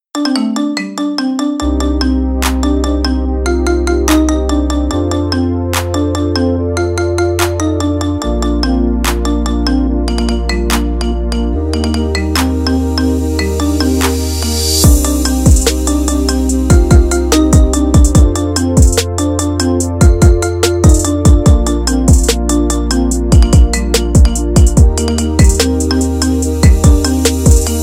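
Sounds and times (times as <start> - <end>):
iPhone marimba ringtone remix: 0.1 - 27.8.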